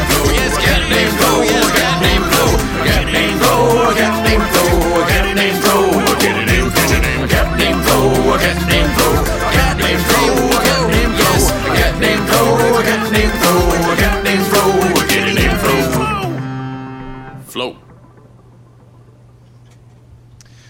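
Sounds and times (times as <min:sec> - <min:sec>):
upbeat novelty song with sung vocals over a band backing: 0:00.0 - 0:17.9.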